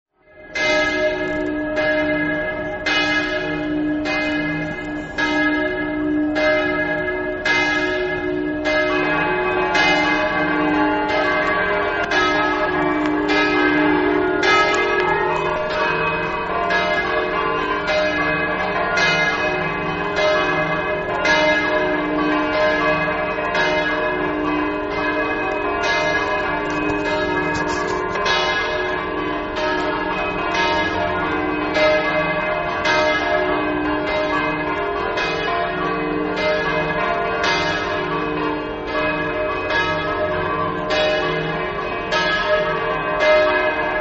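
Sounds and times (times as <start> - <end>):
church bells ringing: 0.2 - 43.9.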